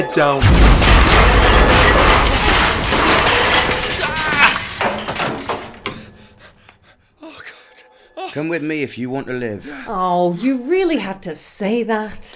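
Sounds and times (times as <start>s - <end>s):
speech: 0.1s - 0.7s, 8.4s - 12.3s
loud explosion blowing open a cell door: 0.4s - 4.9s
clattering metal: 0.4s - 6.3s
falling debris: 0.4s - 6.4s.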